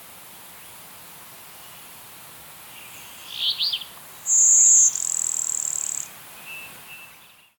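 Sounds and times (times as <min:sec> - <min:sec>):
Blue-winged warbler Vermivora cyanoptera singing thin whine and dry buzz: 0:02.7 - 0:07.5.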